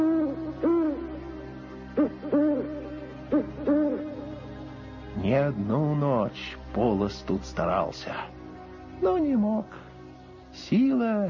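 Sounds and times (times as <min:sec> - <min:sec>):
eagle-owl hooting: 0:00.0 - 0:04.4
speech: 0:05.4 - 0:08.3, 0:09.0 - 0:09.9, 0:10.6 - 0:11.2.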